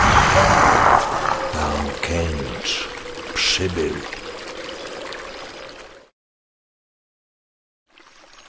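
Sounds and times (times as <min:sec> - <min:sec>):
rushing river water: 0:01.0 - 0:06.1.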